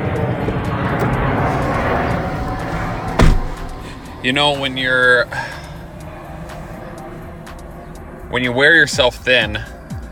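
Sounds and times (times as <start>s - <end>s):
airplane passing overhead: 0.0s - 10.0s
sharp knock: 3.2s - 3.8s
speech: 4.2s - 5.6s, 8.3s - 9.7s.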